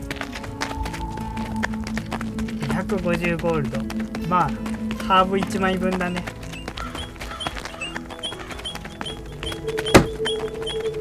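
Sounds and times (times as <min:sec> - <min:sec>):
soft musical backdrop: 0:00.0 - 0:10.9
tapping footsteps: 0:00.0 - 0:10.9
speech: 0:02.8 - 0:06.3
sharp knock: 0:09.9 - 0:10.2.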